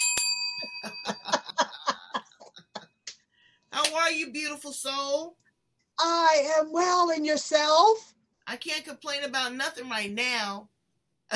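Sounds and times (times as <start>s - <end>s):
single bright bell strike: 0.0s - 2.2s
person chuckling: 0.6s - 3.1s
speech: 3.9s - 5.4s, 6.0s - 10.7s.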